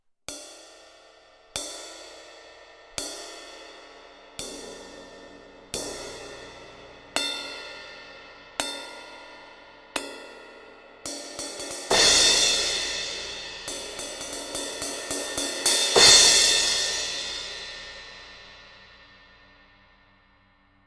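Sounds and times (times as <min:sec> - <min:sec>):
thin 16-inch crash cymbal: 0:00.3 - 0:20.7.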